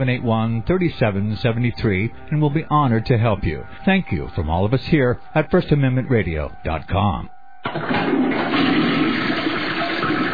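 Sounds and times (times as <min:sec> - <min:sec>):
speech: 0:00.0 - 0:08.3
toilet flushing: 0:07.6 - 0:10.3.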